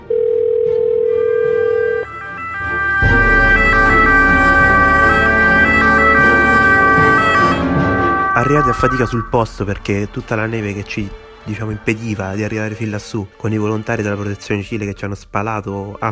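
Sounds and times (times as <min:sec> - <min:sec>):
ambulance siren during a snow emergency: 0:00.0 - 0:09.4
steady phone-like tone: 0:00.1 - 0:02.1
speech: 0:08.4 - 0:16.1.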